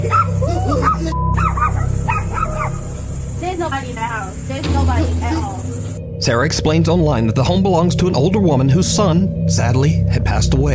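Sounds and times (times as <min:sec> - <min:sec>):
two puppies yipping and whimpering in a home: 0:00.0 - 0:03.0
steady low hum: 0:00.0 - 0:10.7
speech: 0:06.3 - 0:10.7.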